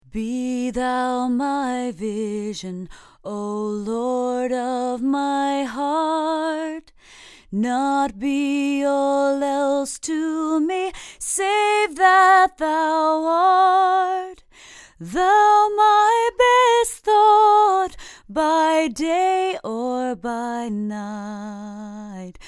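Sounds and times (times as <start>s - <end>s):
female vocal sample: 0.0s - 22.4s.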